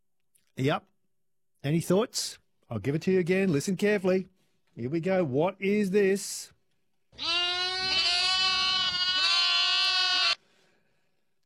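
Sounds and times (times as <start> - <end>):
speech: 0.6 - 0.9, 1.6 - 6.6, 7.2 - 7.4
lamb bleating: 7.2 - 10.4.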